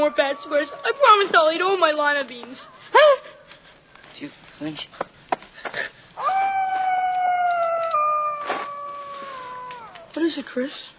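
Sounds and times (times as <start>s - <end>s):
long eerie shrill howl: 0.0s - 2.0s, 6.2s - 10.2s
speech: 0.0s - 3.3s, 4.2s - 5.1s, 10.2s - 10.9s.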